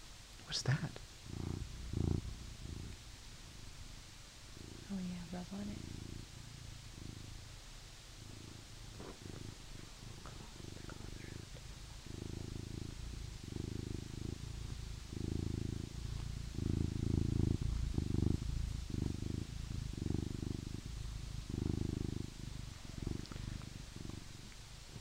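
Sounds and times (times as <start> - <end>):
domestic cat purring into microphone: 0.0 - 24.9
speech: 0.5 - 1.4, 4.9 - 6.0.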